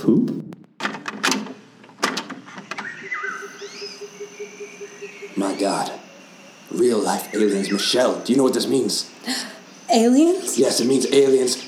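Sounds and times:
department door clacks and thumps: 0:00.8 - 0:02.9
mechanical hum with rising and falling whining tones: 0:02.5 - 0:11.6
speech: 0:05.6 - 0:06.0, 0:06.8 - 0:11.6.

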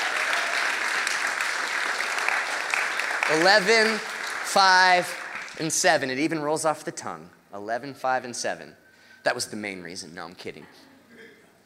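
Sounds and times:
church audience clapping for volunteers: 0:00.0 - 0:06.2
speech: 0:03.3 - 0:10.9.

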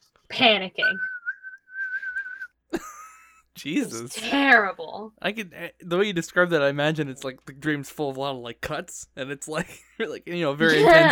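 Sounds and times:
speech: 0:00.4 - 0:01.1, 0:03.6 - 0:11.0
man whistling a tune: 0:00.9 - 0:02.6.

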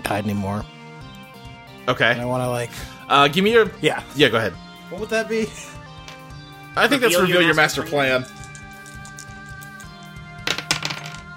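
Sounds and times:
speech: 0:00.1 - 0:00.8, 0:01.8 - 0:05.8, 0:06.8 - 0:08.4
dice clattering across a hard tabletop: 0:08.2 - 0:11.3.

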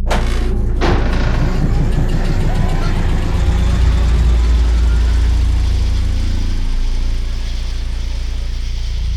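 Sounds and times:
MRI scanner fast rhythmic knocking: 0:00.0 - 0:06.2
MRI scanner loud steady low hum: 0:00.0 - 0:09.1.

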